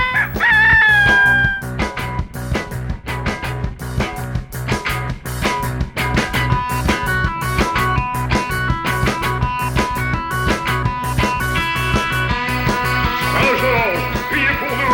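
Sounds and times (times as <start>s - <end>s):
rooster crowing: 0.0s - 1.7s
rhythmic beat with pounding percussion: 0.0s - 14.9s.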